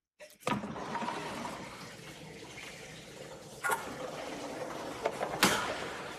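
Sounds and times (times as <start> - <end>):
water rushing in a large communal hotel bath on the seventh floor: 0.6 - 5.1, 5.8 - 6.1.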